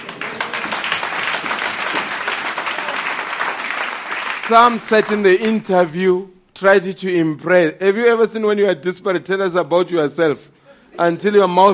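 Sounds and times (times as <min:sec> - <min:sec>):
congregation applauding: 0:00.0 - 0:05.9
speech: 0:04.5 - 0:11.7.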